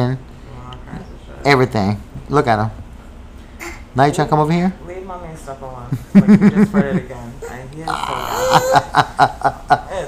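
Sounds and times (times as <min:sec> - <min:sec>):
speech: 0:00.0 - 0:00.3, 0:01.4 - 0:02.8, 0:04.0 - 0:04.8, 0:05.4 - 0:09.7
grunting: 0:07.8 - 0:08.8
yawning: 0:07.8 - 0:08.9
burping: 0:07.9 - 0:08.7
laughter-like sounds: 0:08.4 - 0:10.0.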